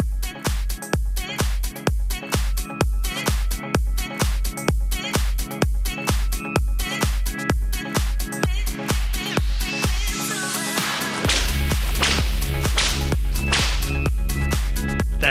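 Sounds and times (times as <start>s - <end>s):
loud driving music track: 0.0s - 15.2s
sharp whip cracks: 11.2s - 14.2s.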